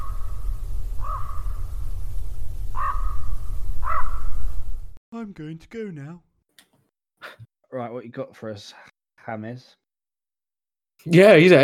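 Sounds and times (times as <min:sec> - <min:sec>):
raven cawing: 0:00.0 - 0:01.8, 0:02.7 - 0:04.6
low rumble: 0:00.0 - 0:05.0
speech: 0:05.2 - 0:06.3, 0:07.7 - 0:09.8, 0:11.0 - 0:11.6.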